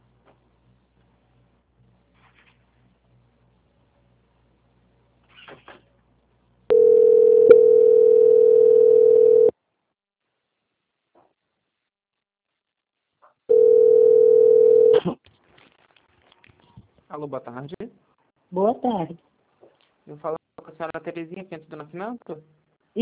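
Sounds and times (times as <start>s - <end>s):
telephone line tone during bank call transfer: 6.7s - 9.5s, 13.5s - 15.0s
speech: 17.2s - 17.8s, 18.8s - 19.3s, 20.2s - 22.9s.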